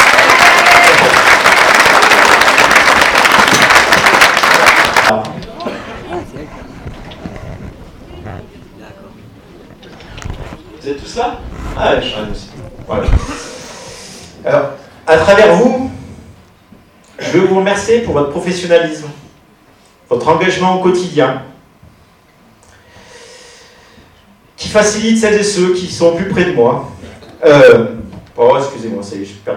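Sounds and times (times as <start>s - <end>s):
audience applause: 0.0s - 5.8s
speech: 11.2s - 13.3s, 15.1s - 15.8s, 17.9s - 19.3s, 20.1s - 21.5s, 24.7s - 29.5s.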